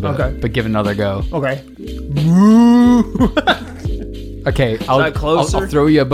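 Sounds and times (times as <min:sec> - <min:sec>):
speech: 0:00.0 - 0:03.7, 0:04.4 - 0:06.1
person vocally imitating a dolphin call with a moo-like tone: 0:02.1 - 0:03.2
laughter: 0:02.6 - 0:04.1.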